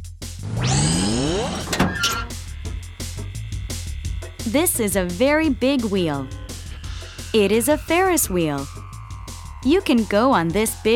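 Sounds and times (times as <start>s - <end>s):
low tones: 0.4s - 10.9s
car power window motor whirring: 0.5s - 5.7s
rhythmic clicking: 2.2s - 8.7s
speech: 4.5s - 6.4s, 7.3s - 8.8s, 9.6s - 10.9s.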